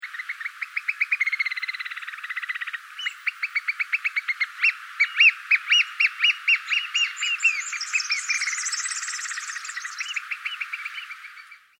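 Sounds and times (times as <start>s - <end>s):
Australian bird calling in sharp repeated notes: 0.0s - 11.7s.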